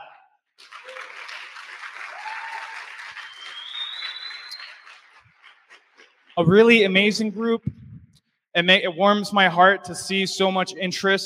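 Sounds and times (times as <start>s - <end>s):
audience applause: 0.6s - 6.4s
faint whoops from audience: 0.8s - 1.3s, 2.1s - 3.5s
speech: 6.4s - 7.8s, 8.6s - 11.2s.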